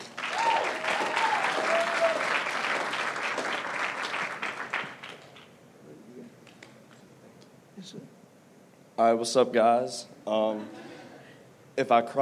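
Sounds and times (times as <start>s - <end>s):
crowd whooping and cheering: 0.0s - 3.5s
crowd applauding for a man being introduced to speak: 0.0s - 5.5s
speech: 9.0s - 10.8s, 11.8s - 12.2s.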